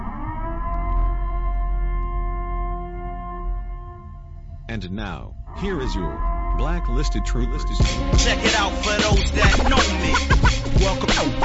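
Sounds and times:
civil defense siren wailing: 0:00.0 - 0:04.4, 0:05.5 - 0:07.8
speech: 0:04.7 - 0:11.4.

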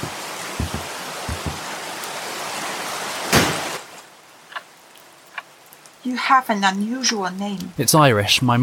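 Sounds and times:
soft low thumps: 0:00.0 - 0:01.7
heavy rain: 0:00.0 - 0:08.5
speech: 0:06.0 - 0:08.6.

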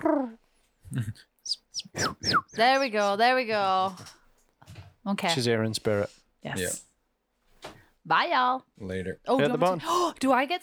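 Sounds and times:
speech: 0:00.1 - 0:04.2, 0:05.0 - 0:06.9, 0:08.1 - 0:10.6
person imitating pigeon cooing: 0:00.9 - 0:02.6.

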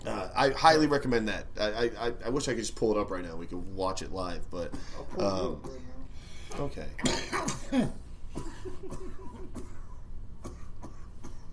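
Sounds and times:
speech: 0:00.0 - 0:05.9, 0:06.5 - 0:09.6
person coughing after smoking: 0:07.0 - 0:11.5.

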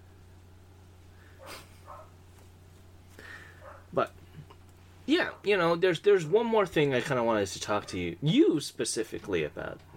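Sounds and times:
steady low electrical hum: 0:00.0 - 0:09.9
dog barking next door: 0:01.3 - 0:02.2, 0:03.6 - 0:04.0
speech: 0:04.0 - 0:04.2, 0:05.1 - 0:09.9.

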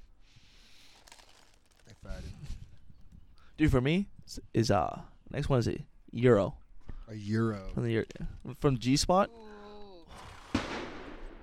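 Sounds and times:
speech: 0:03.6 - 0:09.4
single gunshot fired outdoors: 0:10.2 - 0:11.4.

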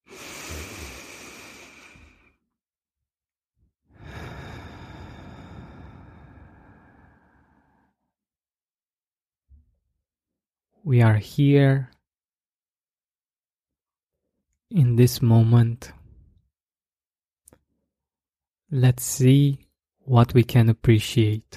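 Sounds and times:
slow deep breath: 0:00.0 - 0:02.4, 0:03.9 - 0:08.2
speech: 0:10.8 - 0:11.9, 0:14.7 - 0:16.0, 0:18.7 - 0:21.5.

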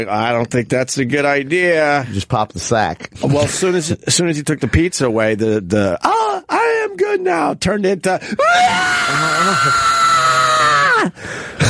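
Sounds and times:
speech: 0:00.0 - 0:10.0
adult voice imitating a child's tantrum scream: 0:08.4 - 0:11.1.

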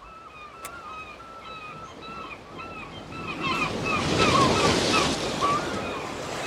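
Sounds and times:
steady sea surf on the coast: 0:02.2 - 0:06.4.

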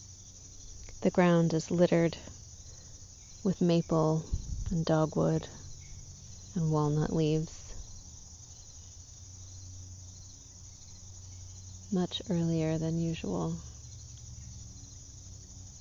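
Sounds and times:
crickets chirping in a high continuous trill: 0:00.0 - 0:15.7
speech: 0:01.0 - 0:02.4, 0:03.4 - 0:05.6, 0:06.6 - 0:07.6, 0:11.9 - 0:13.7.

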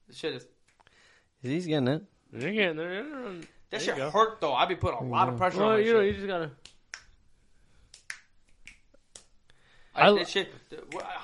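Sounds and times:
speech: 0:00.1 - 0:00.6, 0:01.4 - 0:06.7, 0:10.0 - 0:11.2
soft finger-snap attempts: 0:06.6 - 0:07.2, 0:07.8 - 0:09.6.

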